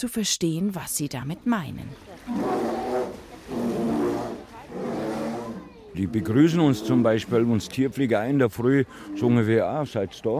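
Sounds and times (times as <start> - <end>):
speech: 0.0 - 2.7, 6.0 - 10.3
bears growling and grumbling: 2.2 - 7.7.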